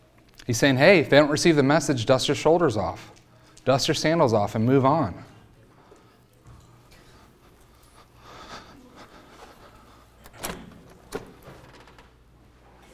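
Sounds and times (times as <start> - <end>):
speech: 0.5 - 5.3
door creaking: 10.2 - 12.2.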